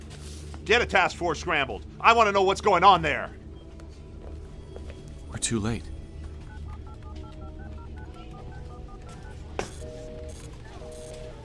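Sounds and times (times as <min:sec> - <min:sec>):
steady hum: 0:00.0 - 0:11.4
speech: 0:00.7 - 0:03.4, 0:05.4 - 0:05.9
longer phone tones: 0:06.1 - 0:11.4
electronic telephone keypad beeps: 0:06.4 - 0:11.4.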